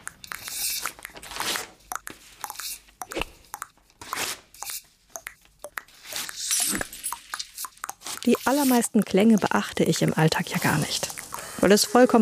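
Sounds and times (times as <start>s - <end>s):
paper tearing: 0.4s - 1.8s, 4.0s - 4.5s
speech: 8.3s - 12.2s.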